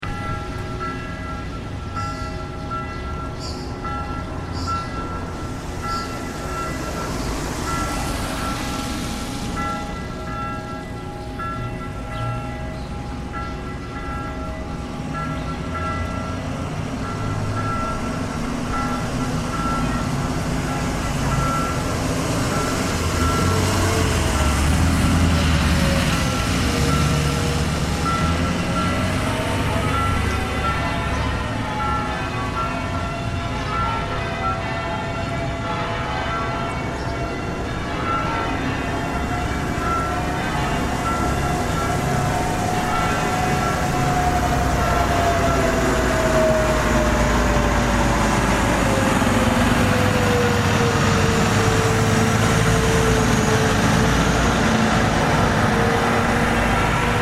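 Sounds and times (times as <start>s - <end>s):
church bells ringing: 0.0s - 57.2s.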